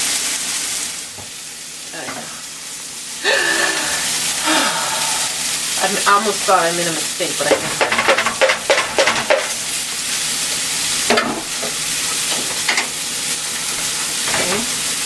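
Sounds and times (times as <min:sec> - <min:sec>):
food sizzling and hissing in a pan while stir-fried: 0:00.0 - 0:15.0
speech: 0:05.9 - 0:08.0
utensil scraping and tossing against the pan: 0:07.4 - 0:09.7.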